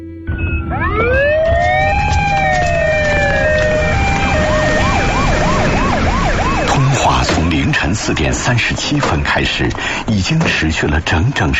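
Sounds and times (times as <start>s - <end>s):
ambulance siren wailing: 0.3s - 10.1s
steady road rumble: 0.4s - 11.5s
speech: 7.9s - 11.5s.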